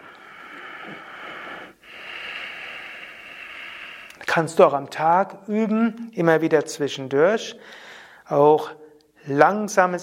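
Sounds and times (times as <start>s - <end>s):
ujjayi breathing, soft hissing throat breath: 0.0s - 4.3s
speech: 0.8s - 1.1s, 4.4s - 10.0s.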